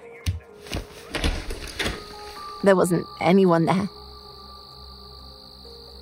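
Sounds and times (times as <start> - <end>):
front door being yanked open with latch and frame rattling: 1.1 - 2.1
speech: 2.6 - 4.0.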